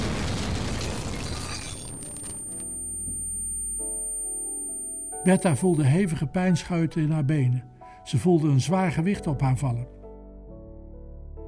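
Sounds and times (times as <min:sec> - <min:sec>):
grenade explosion: 0:00.0 - 0:02.6
crackling debris: 0:00.0 - 0:02.7
thin high ringing tone: 0:01.4 - 0:06.2
speech: 0:05.2 - 0:10.0.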